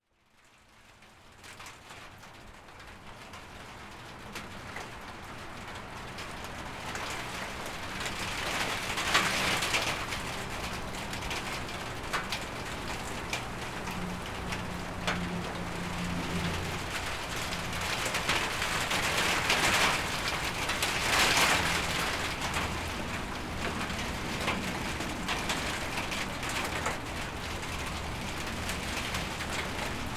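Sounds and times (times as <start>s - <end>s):
rain on carport: 0.2s - 30.1s.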